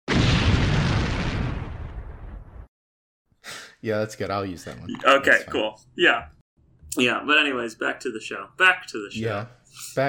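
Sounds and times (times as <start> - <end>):
retro video game explosion sound effect: 0.1 - 2.7
speech: 3.8 - 10.0.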